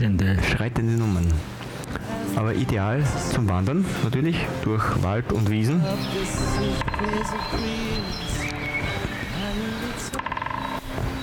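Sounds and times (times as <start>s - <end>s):
speech: 0.0s - 10.3s
harmonic voice-like sounds: 0.0s - 10.6s
birdsong: 5.3s - 11.2s
woodpecker drumming: 5.3s - 11.2s.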